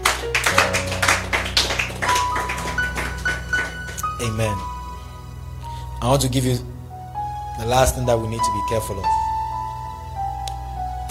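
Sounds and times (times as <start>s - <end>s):
audience clapping hands: 0.0s - 4.7s
sustained keyboard or organ tones: 0.0s - 11.0s
speech: 4.2s - 4.7s, 6.0s - 6.8s, 7.6s - 9.2s.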